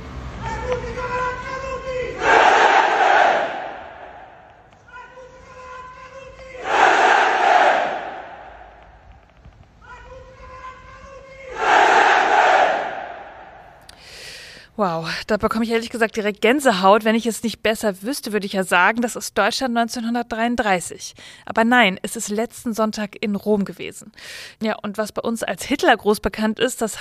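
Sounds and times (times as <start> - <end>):
huge crowd at an evening rally in Rome chanting in unison: 2.2 - 4.5, 6.6 - 8.7, 11.5 - 13.6
speech: 15.0 - 26.9.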